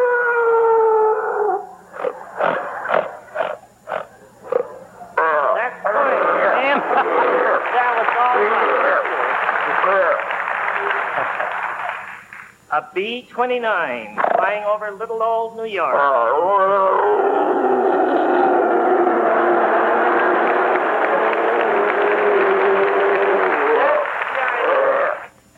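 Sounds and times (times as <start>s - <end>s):
performing animal imitating a lion's roar: 0.0s - 7.8s, 14.2s - 14.6s, 15.9s - 25.3s
laughter: 1.9s - 3.4s, 5.9s - 12.1s, 18.1s - 24.7s
speech: 13.0s - 17.4s.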